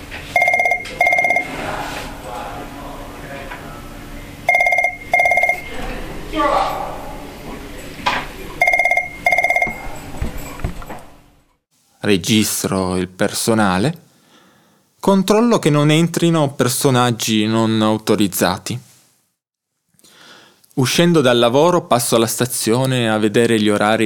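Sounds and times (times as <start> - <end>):
telephone in a museum office ringing with incoming calls: 0.3 - 1.6, 4.5 - 5.7, 8.6 - 10.0
speech: 12.1 - 14.0, 15.0 - 18.8, 20.8 - 24.0.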